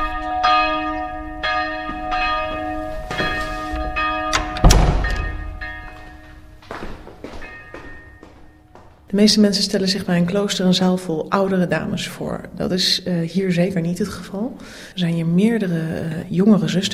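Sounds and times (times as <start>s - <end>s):
church bell ringing for service: 0.0s - 10.0s
thuds and footstep-like knocks: 4.6s - 5.6s
speech: 9.2s - 16.9s.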